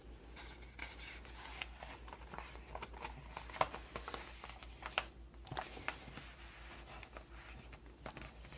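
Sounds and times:
magazine pages flipping and rustling: 0.3 - 8.5.

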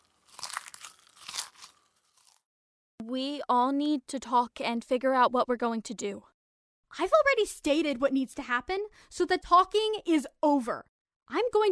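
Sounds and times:
chewing crunchy food: 0.0 - 2.5
cardboard snack box being torn open: 0.2 - 2.4
speech: 3.1 - 6.3, 7.0 - 11.7.

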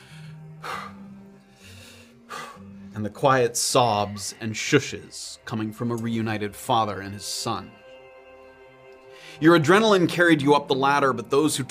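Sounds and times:
heavy breathing after climbing a ladder out of a mineshaft: 0.0 - 3.0, 9.0 - 9.4
speech: 3.0 - 7.8, 9.4 - 11.6.

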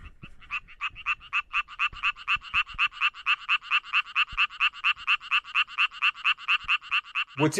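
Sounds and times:
chytrid-infected male frog mating call: 0.0 - 7.5
speech: 7.4 - 7.5.

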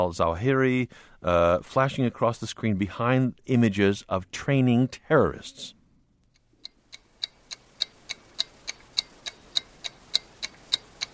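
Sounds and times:
speech: 0.0 - 5.8
ticking bomb clock sound effect in a political ad: 6.6 - 11.1.

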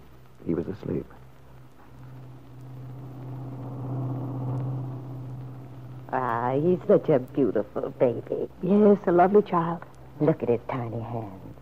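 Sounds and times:
speech: 0.4 - 1.2, 6.1 - 11.6
big car engine rumbling while driving: 1.2 - 8.6
road noise from a driven car: 1.5 - 8.2.

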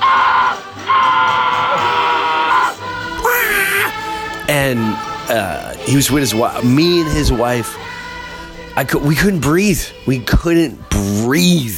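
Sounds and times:
voice imitating a man's scream on an amusement park ride: 0.0 - 4.0
speech: 4.5 - 7.9, 8.8 - 11.7.

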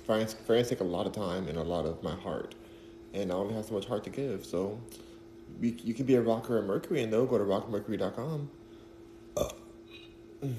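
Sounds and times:
faint hum: 0.0 - 10.5
speech: 0.1 - 8.6, 9.4 - 9.6
person burping after a drink: 9.3 - 10.5.

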